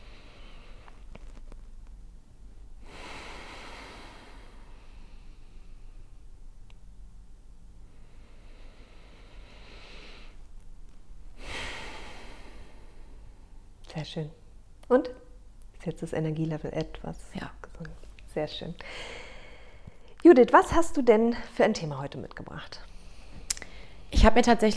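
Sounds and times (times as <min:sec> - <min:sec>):
deep breathing in and out during a guided relaxation exercise: 0:00.0 - 0:01.2, 0:02.8 - 0:06.4, 0:07.8 - 0:13.8, 0:18.8 - 0:20.1, 0:22.9 - 0:24.1
steady low hum: 0:00.0 - 0:24.7
speech: 0:14.0 - 0:15.2, 0:15.8 - 0:19.3, 0:20.2 - 0:22.9, 0:24.1 - 0:24.7.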